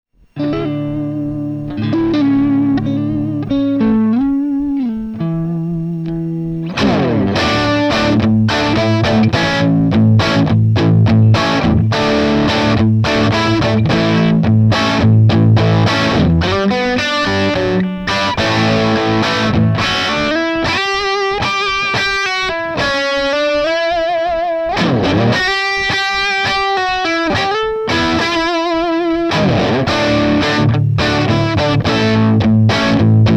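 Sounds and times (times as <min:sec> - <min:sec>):
rock music: 0:00.4 - 0:33.3.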